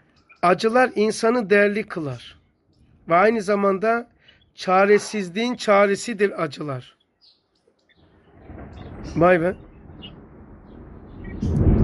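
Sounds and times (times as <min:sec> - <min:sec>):
speech: 0:00.4 - 0:02.4, 0:03.1 - 0:07.0, 0:09.1 - 0:09.7
thunder rumbling: 0:08.0 - 0:11.8.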